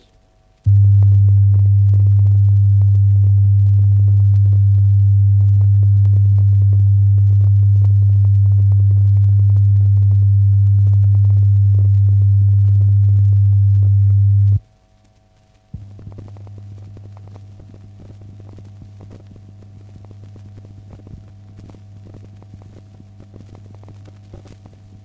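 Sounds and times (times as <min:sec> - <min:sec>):
steady pure low-pitched loudspeaker phasing test tone: 0:00.7 - 0:14.6.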